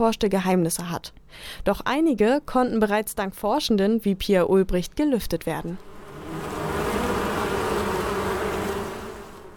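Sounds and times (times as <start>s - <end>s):
speech: 0.0s - 6.0s
thousands of western honeybees buzzing at a university institute for evolutionary genetics: 5.8s - 9.5s.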